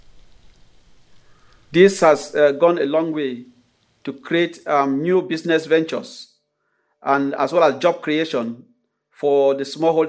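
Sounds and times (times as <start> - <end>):
dense mass of black soldier fly larvae crawling: 0.0 - 4.2
speech: 1.7 - 6.3, 7.0 - 10.0.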